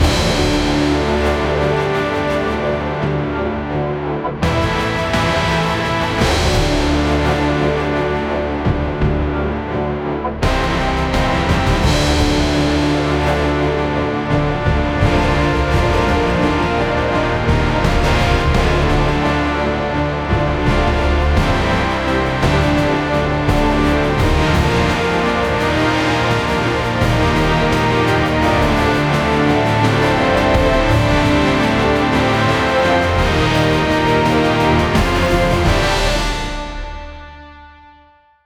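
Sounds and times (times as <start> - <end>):
intense epic orchestral music: 0.0 - 38.2.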